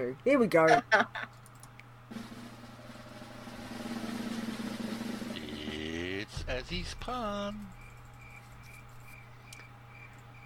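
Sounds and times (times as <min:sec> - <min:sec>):
speech: 0:00.0 - 0:01.4, 0:06.5 - 0:07.8
low hum: 0:00.0 - 0:10.4
crickets chirping: 0:06.4 - 0:10.4.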